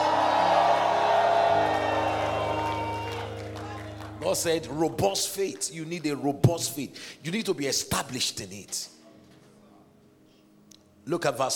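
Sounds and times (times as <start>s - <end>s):
large crowd screaming, whooping and cheering: 0.0s - 4.8s
steady musical drone: 0.0s - 5.2s
speech: 4.3s - 9.0s, 11.1s - 11.5s.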